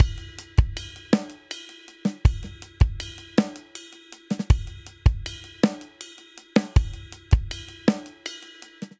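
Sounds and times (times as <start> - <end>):
straight six rock drum outro in 6/8: 0.0 - 8.9.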